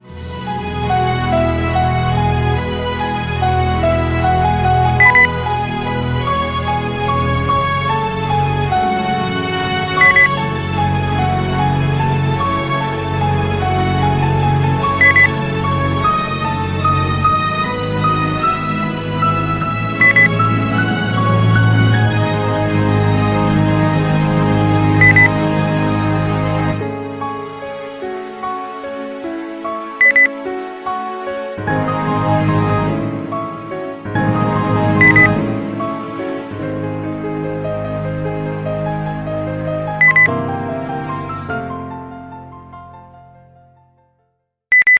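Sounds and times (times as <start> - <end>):
classical music: 0.0 - 44.3.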